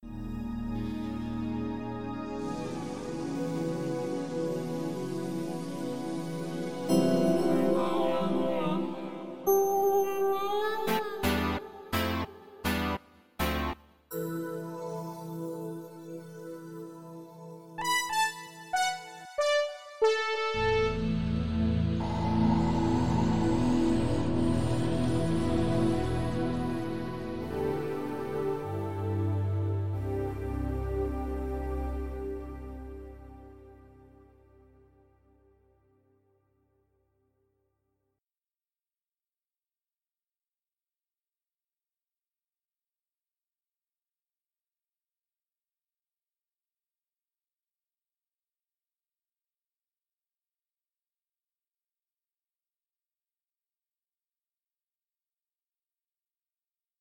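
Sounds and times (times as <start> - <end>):
synth: 0.2 - 13.8, 14.7 - 34.0.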